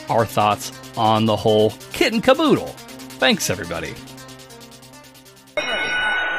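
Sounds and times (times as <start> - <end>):
speech: 0.1 - 4.1
metallic wrestling ring bell rung to start a match: 5.6 - 6.3.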